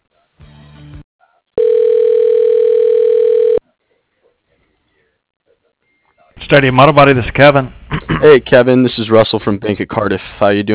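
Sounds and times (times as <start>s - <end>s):
phone line ringing during call transfer at an auto body shop: 1.6s - 3.6s
speech: 6.5s - 10.7s.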